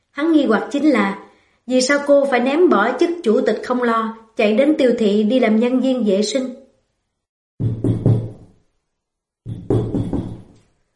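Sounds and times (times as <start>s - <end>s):
speech: 0.2s - 6.6s
colleague knocking on a door: 7.6s - 8.6s, 9.4s - 10.6s.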